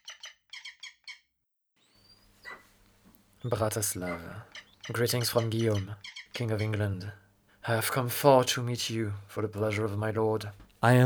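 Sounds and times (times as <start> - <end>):
hunting birds giving shrill squeaky calls in a mews: 0.0 - 1.2, 1.8 - 6.8
faint hunting bird cry: 1.8 - 2.8, 3.4 - 6.8
speech: 3.4 - 11.0.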